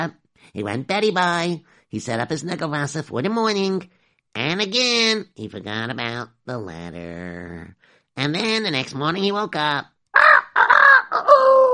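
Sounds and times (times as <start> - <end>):
speech: 0.0 - 9.9
rooster crowing: 10.2 - 11.7.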